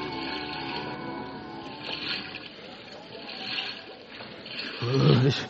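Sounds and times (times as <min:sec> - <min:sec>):
cold water sloshing and splashing as someone slides down a wharf piling: 0:01.7 - 0:05.4.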